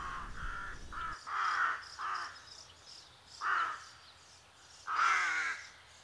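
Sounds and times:
rook cawing: 0.0 - 2.4, 3.4 - 4.0, 4.9 - 5.7.

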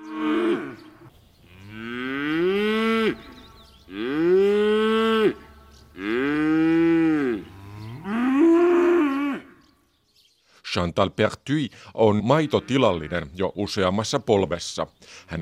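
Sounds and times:
cows mooing: 0.0 - 9.6
speech: 10.8 - 15.4.

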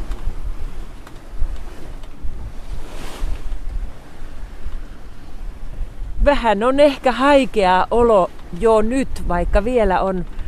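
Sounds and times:
sea water rushing against a moving sailboat hull: 0.0 - 10.4
wind buffeting the microphone: 0.0 - 10.4
speech: 6.3 - 10.4.

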